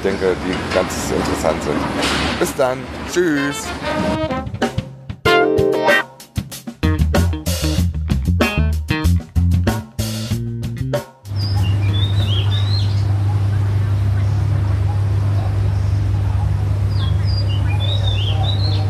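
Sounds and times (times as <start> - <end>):
speech: 0.0 - 4.6
music: 3.2 - 13.1
birds chirping in the morning: 11.3 - 18.8.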